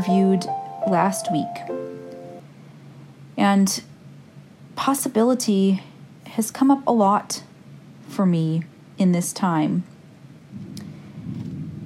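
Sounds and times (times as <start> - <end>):
speech: 0.0 - 2.0, 3.4 - 3.9, 4.8 - 7.5, 8.1 - 9.9
rolling thunder from a big storm: 10.5 - 11.8.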